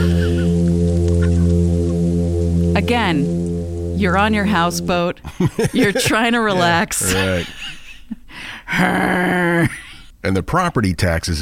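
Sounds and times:
laughter: 0.0 - 0.6, 1.2 - 1.6, 5.2 - 10.0
toadfish humming call: 0.0 - 5.2
speech: 2.8 - 3.4, 4.0 - 7.6, 8.7 - 11.4.

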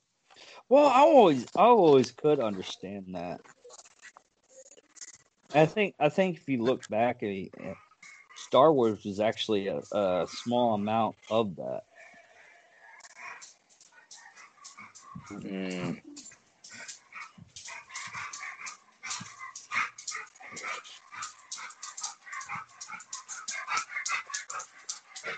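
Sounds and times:
speech: 0.7 - 3.6, 5.5 - 7.8, 8.5 - 11.9, 15.2 - 16.2
small dog panting excitedly: 7.5 - 11.0, 11.8 - 25.3
small dog whining: 12.9 - 25.3.

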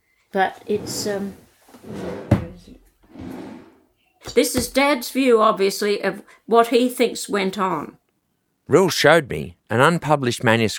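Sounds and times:
speech: 0.3 - 3.3, 4.4 - 8.0, 8.7 - 10.7
drawer sliding open with a rumbling scrape: 0.7 - 1.2, 1.8 - 3.8.

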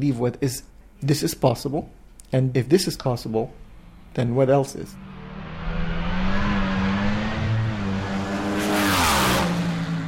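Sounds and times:
speech: 0.0 - 5.1
race car engine idling and revving: 5.0 - 10.0.

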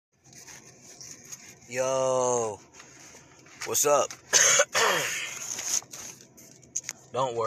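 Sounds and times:
speech: 1.7 - 2.7, 3.6 - 5.2, 7.1 - 7.4
raspy coughing: 4.3 - 5.4.

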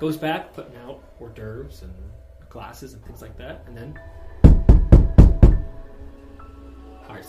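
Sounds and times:
speech: 0.0 - 4.2, 7.1 - 7.2
firm knocking on a wooden front door: 4.4 - 5.8.

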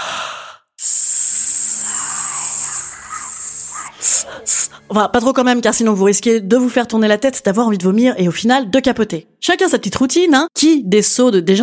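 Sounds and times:
hissing exhalations through pursed lips in abdominal breathing exercise: 0.0 - 4.9
speech: 4.3 - 11.6.

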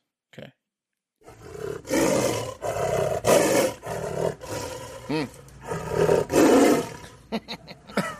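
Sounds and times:
speech: 0.4 - 0.6, 5.1 - 5.4
tiger roaring: 1.2 - 7.2.

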